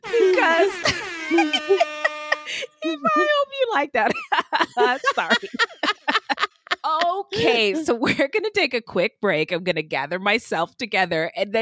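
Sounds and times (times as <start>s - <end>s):
hip hop air horn blasts: 0.0s - 2.8s
laughter: 0.2s - 3.4s, 4.0s - 8.0s
speech: 3.8s - 5.6s, 7.6s - 11.6s.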